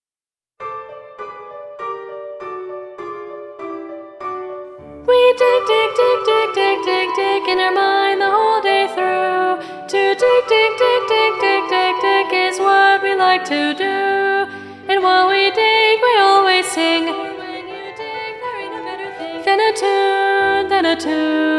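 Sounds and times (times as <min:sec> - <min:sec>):
alto voice singing: 0:05.0 - 0:21.5.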